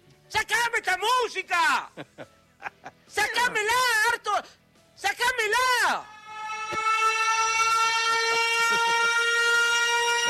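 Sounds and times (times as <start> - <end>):
speech: 0.3 - 6.2
siren sound effect: 6.0 - 10.2.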